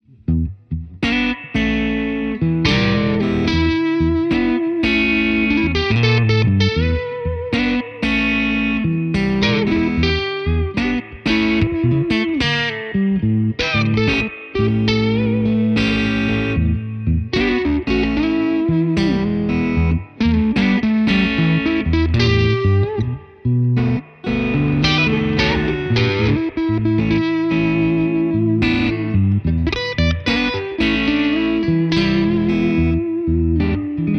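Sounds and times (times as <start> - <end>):
blues electric guitar: 0.1 - 34.1.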